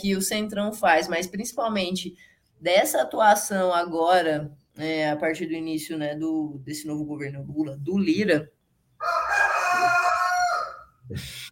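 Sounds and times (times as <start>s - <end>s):
speech: 0.0s - 9.5s, 11.1s - 11.5s
rooster crowing: 9.0s - 11.0s.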